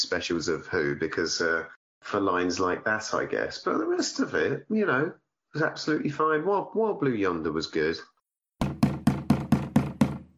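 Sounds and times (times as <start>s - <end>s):
speech: 0.0s - 8.1s
firm knocks on a front door: 8.6s - 10.3s.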